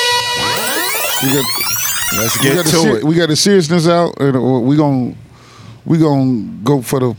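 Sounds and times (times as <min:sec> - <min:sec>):
rewind sound effect: 0:00.5 - 0:03.0
speech: 0:01.2 - 0:05.2, 0:05.8 - 0:07.1.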